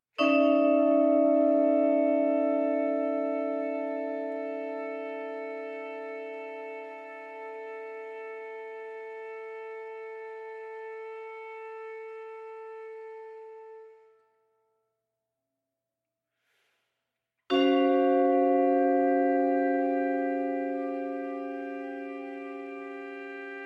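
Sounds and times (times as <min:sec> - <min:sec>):
vibraphone: 0:00.2 - 0:04.9, 0:17.5 - 0:23.6
trumpet: 0:02.8 - 0:14.4, 0:18.7 - 0:23.6.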